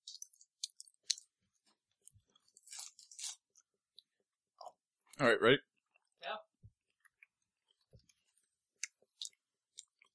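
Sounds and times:
chewing Tootsie Roll candy: 0:00.0 - 0:04.8, 0:06.9 - 0:10.1
speech: 0:05.2 - 0:05.7.

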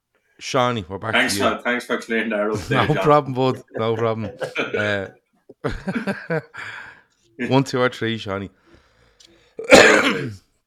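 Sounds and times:
speech: 0:00.4 - 0:08.6, 0:09.6 - 0:10.4
laughter: 0:02.6 - 0:06.7
harsh throaty cough: 0:04.2 - 0:05.0, 0:09.6 - 0:10.5.

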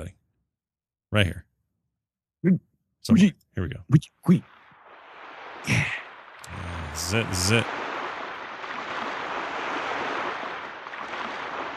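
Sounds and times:
speech: 0:01.1 - 0:01.5, 0:02.4 - 0:04.6, 0:05.6 - 0:07.8
rushing water in a theme song played from an MP3: 0:04.3 - 0:11.7.

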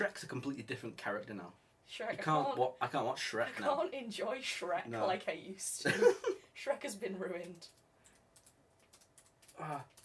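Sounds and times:
speech: 0:00.0 - 0:07.8, 0:09.6 - 0:10.0
fast typing on a computer keyboard: 0:07.4 - 0:10.0.

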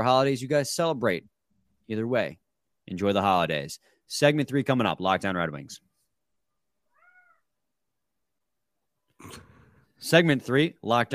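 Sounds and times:
speech: 0:00.0 - 0:01.3, 0:01.9 - 0:05.9, 0:09.2 - 0:11.1
cat giving a short rising-and-falling meow: 0:06.8 - 0:07.5.

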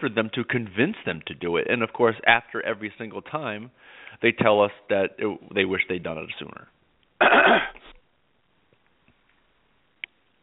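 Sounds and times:
speech: 0:00.0 - 0:07.7
throat clearing: 0:07.2 - 0:08.0.

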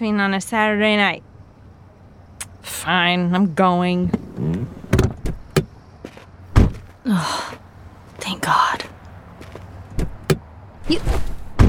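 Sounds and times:
speech: 0:00.0 - 0:01.3, 0:02.6 - 0:04.8, 0:08.3 - 0:08.8
car door clicking open and thumping shut: 0:03.9 - 0:06.9, 0:09.9 - 0:11.6.

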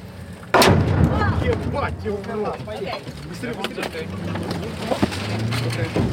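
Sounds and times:
rumbling aftermath of artillery blast: 0:00.0 - 0:06.1
artillery shell blast: 0:00.5 - 0:02.0.

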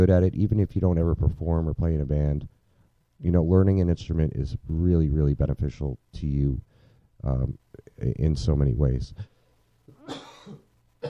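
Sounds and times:
speech: 0:00.0 - 0:02.6, 0:03.2 - 0:09.3, 0:10.1 - 0:11.0
person coughing harshly: 0:09.9 - 0:11.0.

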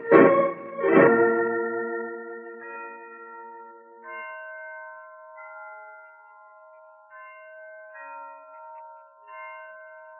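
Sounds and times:
church tower bells ringing: 0:00.0 - 0:10.1.

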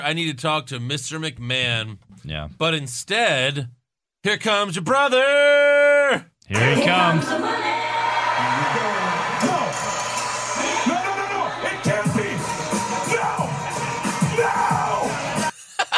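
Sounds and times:
speech: 0:00.0 - 0:07.7
loud roaring wrestling crowd: 0:06.6 - 0:15.5
man screaming in a wrestling clip: 0:13.0 - 0:13.6, 0:14.2 - 0:15.5.

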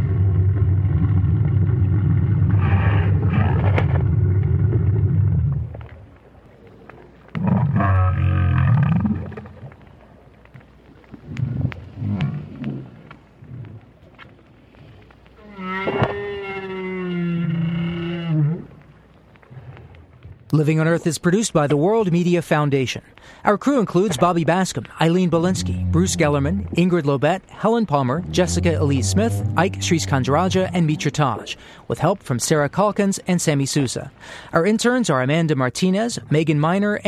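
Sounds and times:
lone adult whale calls recorded by hydrophone on the sea bottom near Peninsula Valdez, Argentina: 0:00.0 - 0:06.0, 0:06.6 - 0:09.5, 0:15.4 - 0:18.9, 0:25.3 - 0:26.9, 0:28.2 - 0:31.2
speech: 0:20.6 - 0:37.0.

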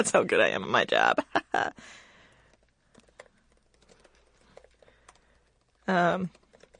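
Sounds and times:
speech: 0:00.0 - 0:02.0, 0:05.9 - 0:06.4
typing on a computer keyboard: 0:02.3 - 0:06.7.

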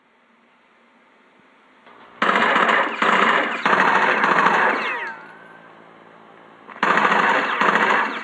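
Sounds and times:
automatic machine gun fire from a war-based video game on Xbox 360: 0:01.9 - 0:05.5, 0:06.7 - 0:08.2
descending whine: 0:03.0 - 0:06.8.

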